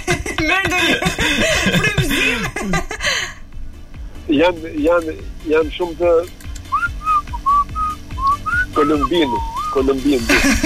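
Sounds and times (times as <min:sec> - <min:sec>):
laughter: 0:00.0 - 0:03.4, 0:10.1 - 0:10.6
speech: 0:00.4 - 0:01.8, 0:04.4 - 0:06.4, 0:08.8 - 0:10.6
person whistling a melody: 0:06.7 - 0:09.8.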